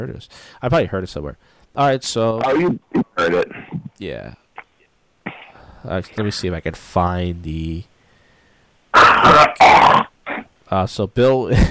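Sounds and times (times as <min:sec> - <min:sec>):
speech: 0:00.0 - 0:04.4, 0:05.8 - 0:07.9, 0:10.7 - 0:11.6
man hacking to bring up mucus and clear his throat: 0:05.3 - 0:05.6, 0:09.0 - 0:10.5.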